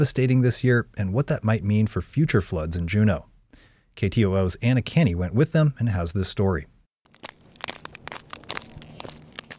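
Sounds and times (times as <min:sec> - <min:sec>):
speech: 0:00.0 - 0:03.3, 0:04.0 - 0:06.7
hydrologist's footsteps shuffling and crunching across blue glacier ice: 0:07.0 - 0:09.5.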